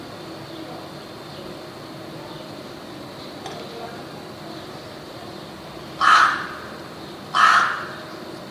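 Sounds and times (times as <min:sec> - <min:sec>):
faint background noise: 0:00.0 - 0:08.4
rook giving harsh hoarse caws: 0:06.0 - 0:08.2.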